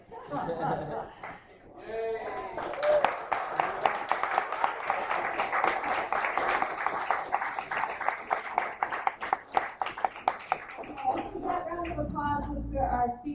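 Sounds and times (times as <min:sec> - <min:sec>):
laughter: 0:00.0 - 0:03.8, 0:10.8 - 0:12.7
speech: 0:00.3 - 0:03.1
audience voices and cheering: 0:01.8 - 0:05.6, 0:10.8 - 0:12.8
audience applause at an evening talk: 0:02.2 - 0:12.4.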